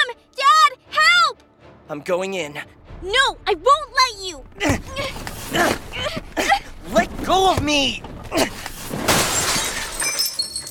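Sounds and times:
speech: 1.9 - 8.6
mirror glass shattering: 8.9 - 10.6.

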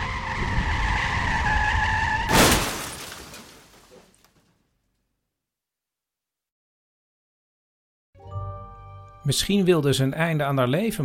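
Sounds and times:
car engine and tire noise: 0.0 - 2.9
car crash impact with rumbling debris: 2.2 - 4.4
speech: 9.3 - 11.0.

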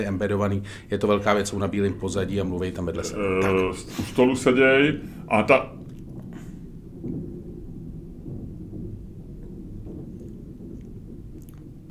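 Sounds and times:
speech: 0.0 - 5.8
heavy cart rolling across a floor overhead: 0.0 - 11.9
faint knocks: 5.0 - 11.9.

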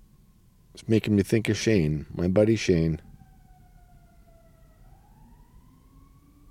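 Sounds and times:
constant low road rumble inside a vehicle: 0.0 - 6.4
wailing emergency vehicle siren heard from inside a vehicle: 0.0 - 6.4
speech: 0.8 - 3.1.

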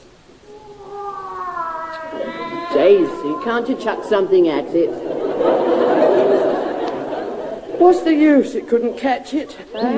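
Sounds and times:
cat yowling: 0.4 - 5.7
speech: 2.8 - 6.6, 7.8 - 9.9
laughter: 2.9 - 8.7.

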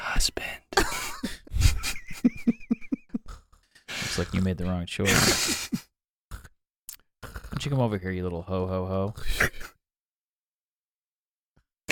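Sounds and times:
speech: 0.2 - 0.7, 4.2 - 5.8, 7.6 - 9.6
laughter: 0.8 - 3.3, 5.0 - 5.8
cartoonish snoring: 3.2 - 5.7, 6.3 - 6.6, 7.2 - 7.9, 9.1 - 9.8.

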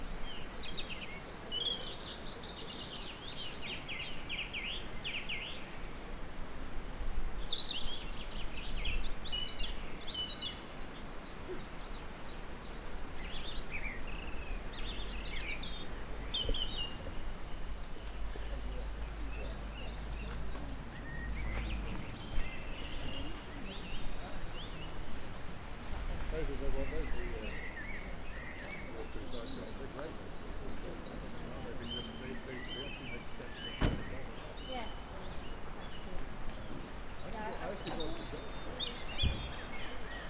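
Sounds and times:
robins and song thrushes singing in spring: 0.0 - 40.2
faint voices: 14.6 - 40.2
sharp knock: 33.8 - 34.2.

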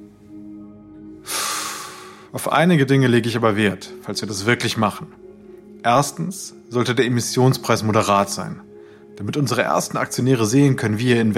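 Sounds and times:
deep breath: 1.1 - 2.4, 8.7 - 9.2
speech: 2.3 - 5.2, 5.8 - 11.3.

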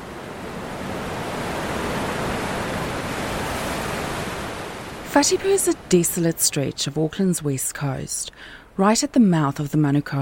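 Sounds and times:
big ocean waves breaking on a beach after swells hit an offshore sandbar: 0.0 - 7.8
speech: 5.2 - 10.2.

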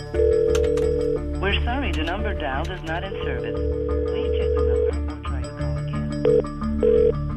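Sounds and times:
telephone line ringing with electronic tones: 0.1 - 1.4, 3.1 - 5.0, 6.2 - 7.2
speech: 1.9 - 4.0, 6.2 - 7.2.

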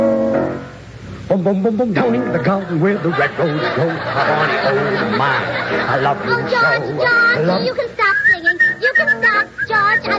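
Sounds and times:
speech: 1.4 - 8.0
laughter: 2.0 - 6.8
person whistling a lilting tune: 8.1 - 10.1.

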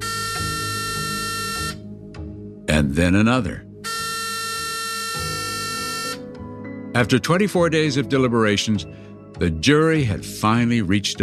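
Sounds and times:
harsh electric courthouse buzzer: 0.0 - 1.8, 3.8 - 6.2
speech: 2.8 - 3.7, 7.0 - 11.2.

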